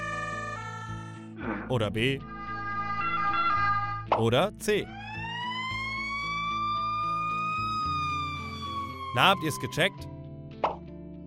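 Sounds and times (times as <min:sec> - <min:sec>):
speech: 0:01.5 - 0:02.3, 0:04.2 - 0:05.0, 0:09.2 - 0:10.1
pulsing blaring ambulance horn: 0:02.2 - 0:04.1
US ambulance siren wailing: 0:02.3 - 0:04.1, 0:04.8 - 0:10.2.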